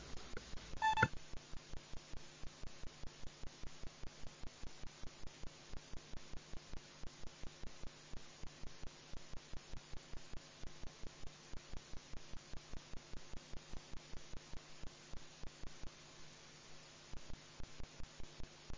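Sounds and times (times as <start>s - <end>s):
faint hum: 0.0s - 18.7s
electronic signal tone marking a council vote: 0.8s - 1.1s.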